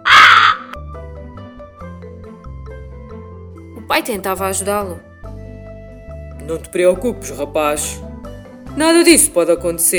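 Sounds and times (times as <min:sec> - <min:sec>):
harsh caw from a big bird: 0:00.0 - 0:00.8
speech: 0:03.9 - 0:05.1, 0:06.5 - 0:08.1, 0:08.8 - 0:09.9.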